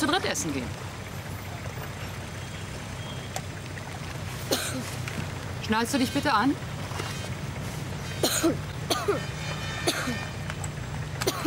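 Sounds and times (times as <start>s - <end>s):
speech: 0.0s - 0.9s, 5.7s - 7.1s, 8.4s - 9.4s
low engine-like hum: 0.0s - 11.4s
person coughing: 4.5s - 4.9s, 8.2s - 10.2s, 11.2s - 11.4s.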